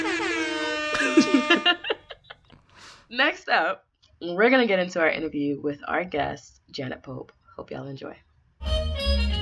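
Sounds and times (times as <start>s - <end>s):
air horn blasts: 0.0s - 1.8s
laughter: 0.9s - 2.6s
speech: 3.1s - 9.3s.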